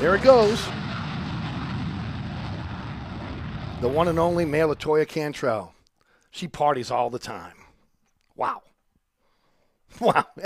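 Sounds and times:
speech: 0:00.0 - 0:00.8, 0:03.8 - 0:07.6, 0:08.4 - 0:08.7, 0:09.9 - 0:10.4
jet plane flying overhead near an airport: 0:00.0 - 0:04.9.

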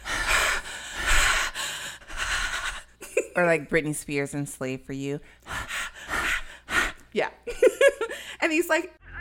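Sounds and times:
little boy panting heavily into a phone on a 911 call: 0:00.0 - 0:03.0, 0:05.4 - 0:07.0
speech: 0:03.4 - 0:05.6, 0:07.1 - 0:07.7, 0:08.4 - 0:09.0.

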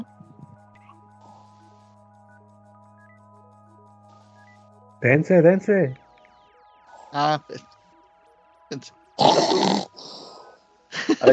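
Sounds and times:
speech: 0:05.0 - 0:06.0, 0:07.1 - 0:07.7, 0:08.7 - 0:09.5
person snoring: 0:09.2 - 0:10.6
laughter: 0:11.0 - 0:11.3.

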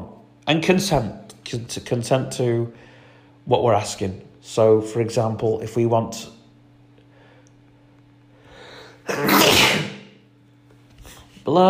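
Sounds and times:
speech: 0:00.5 - 0:06.4, 0:09.1 - 0:09.6, 0:11.5 - 0:11.6
loud human sneeze: 0:09.0 - 0:10.2.

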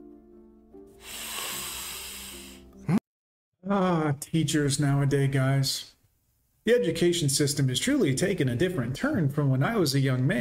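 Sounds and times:
sniffing: 0:01.0 - 0:02.7
speech: 0:03.7 - 0:06.0, 0:06.6 - 0:10.3.

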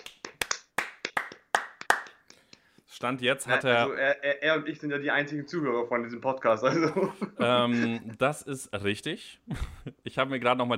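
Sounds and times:
hand clapping from one or two people: 0:00.0 - 0:02.7
speech: 0:03.0 - 0:10.7
laughter: 0:06.6 - 0:08.3.

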